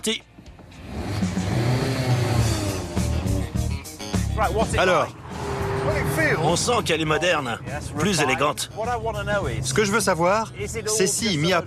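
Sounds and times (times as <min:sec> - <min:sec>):
speech: 0:00.0 - 0:00.3, 0:04.4 - 0:11.6
light Mazda MX-5 rear-wheel-drive sports coupe accelerating: 0:00.6 - 0:03.9, 0:04.6 - 0:07.2.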